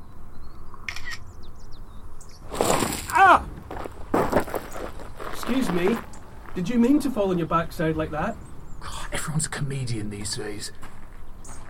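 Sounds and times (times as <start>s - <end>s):
thin bird chirps: 0.0s - 11.6s
camera shutter clicks taking a selfie at Cheddar Gorge: 0.9s - 1.2s
speech: 5.5s - 8.5s, 9.1s - 10.8s.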